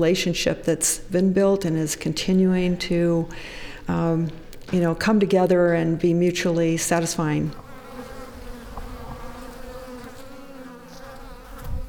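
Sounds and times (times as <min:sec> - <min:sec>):
speech: 0:00.0 - 0:07.6
small swarm of bees buzzing around tree outdoors: 0:07.2 - 0:11.8.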